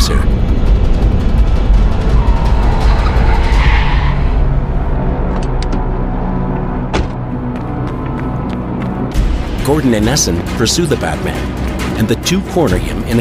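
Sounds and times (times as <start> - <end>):
car engine rumble: 0.0 - 9.2
car tires skidding across pavement while braking hard: 1.4 - 5.6
speech: 9.7 - 13.1.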